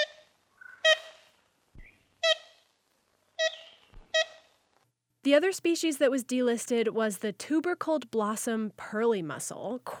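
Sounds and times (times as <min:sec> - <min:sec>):
large black-and-white woodpecker with red crown giving nasal toy-horn-like calls: 0:00.0 - 0:02.6, 0:03.4 - 0:04.5
old recording hiss: 0:00.0 - 0:06.7
speech: 0:05.2 - 0:09.9.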